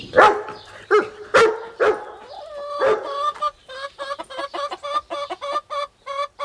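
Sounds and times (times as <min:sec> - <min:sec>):
hens clucking and squabbling over food in a henhouse: 0:00.0 - 0:06.4
dachshund barking: 0:00.1 - 0:03.2.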